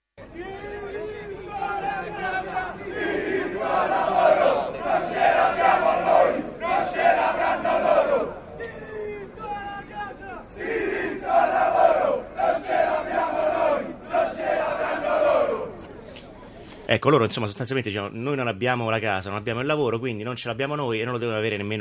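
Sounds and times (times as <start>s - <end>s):
crowd of young voices chanting a chorus in unison: 0.4s - 16.0s
speech: 16.9s - 21.7s.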